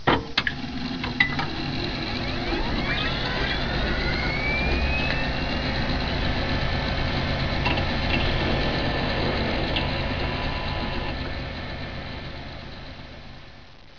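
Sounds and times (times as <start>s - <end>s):
ambience: 0.4s - 13.9s
computer bootup sound: 1.2s - 11.5s.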